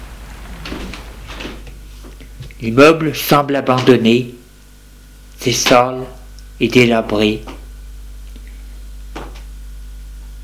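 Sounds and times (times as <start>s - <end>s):
heavy apartment building entrance door being pushed open: 0.0s - 1.8s
steady low hum: 0.0s - 10.4s
speech: 2.6s - 4.4s, 5.4s - 7.6s.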